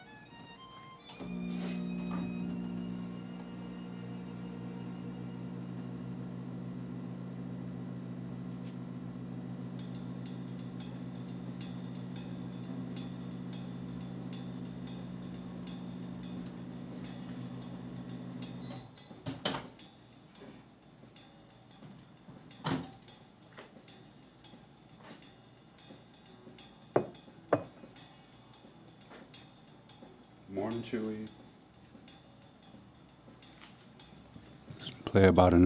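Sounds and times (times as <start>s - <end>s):
microwave oven humming with a faint high whine: 0.0s - 19.9s
speech: 30.7s - 31.3s, 35.1s - 35.6s.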